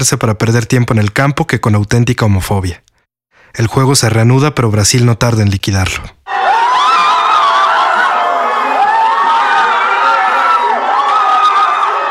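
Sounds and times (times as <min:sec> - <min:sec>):
speech: 0:00.0 - 0:02.9, 0:03.5 - 0:06.4
football fans roaring and shouting celebrating a Brazil goal: 0:06.3 - 0:12.0.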